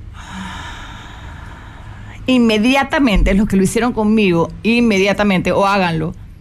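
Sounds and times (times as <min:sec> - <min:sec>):
slow controlled exhale of breath in a breathing exercise: 0:00.0 - 0:02.2
speech: 0:02.3 - 0:06.2.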